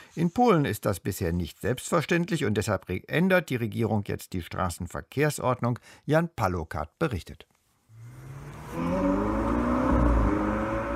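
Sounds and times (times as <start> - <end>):
speech: 0.2 - 7.5
cars driving past a zebra crossing in Poland: 7.9 - 10.9
low rumbling road noise: 8.0 - 10.9.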